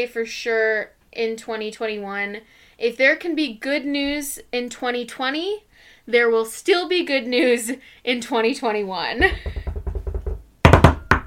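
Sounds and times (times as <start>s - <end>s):
speech: 0.0s - 9.6s
knocking on wood: 9.2s - 11.2s.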